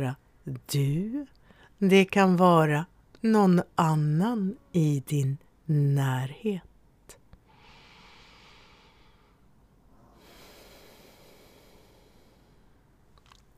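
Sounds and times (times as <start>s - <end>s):
speech: 0.0s - 6.7s
audible breathing: 7.4s - 13.0s.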